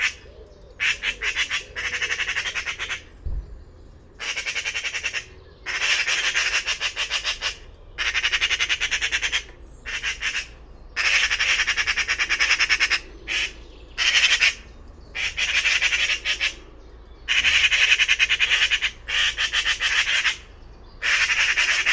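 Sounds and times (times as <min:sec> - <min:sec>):
harsh rasping pulsing bird calls: 0:00.0 - 0:03.3, 0:04.0 - 0:21.9.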